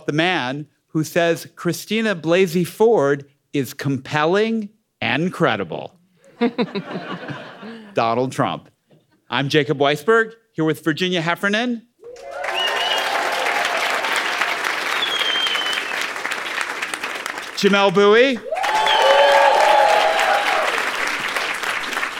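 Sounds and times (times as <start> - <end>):
speech: 0.0 - 8.7, 9.3 - 12.4, 17.6 - 18.6
laughter: 6.3 - 7.9
crowd cheers and whoops: 12.0 - 15.8, 18.4 - 21.0
sizable crowd applause: 12.0 - 22.1.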